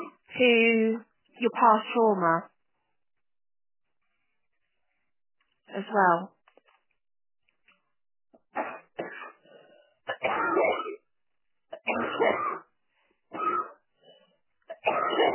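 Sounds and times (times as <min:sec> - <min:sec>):
speech: 0:00.4 - 0:02.5, 0:05.7 - 0:06.4, 0:11.9 - 0:12.6
person coughing: 0:08.6 - 0:09.4, 0:10.1 - 0:11.1, 0:11.8 - 0:12.7, 0:13.4 - 0:13.8, 0:14.7 - 0:15.3
person clearing throat: 0:10.1 - 0:11.0, 0:11.8 - 0:12.7, 0:13.4 - 0:13.8, 0:14.7 - 0:15.3.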